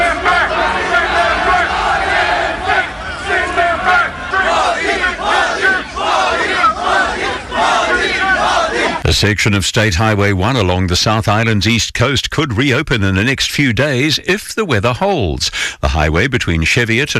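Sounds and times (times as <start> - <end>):
protesters in New Zealand chanting and shouting anti-immigrant slogans: 0.0 - 9.0
speech: 9.2 - 17.1.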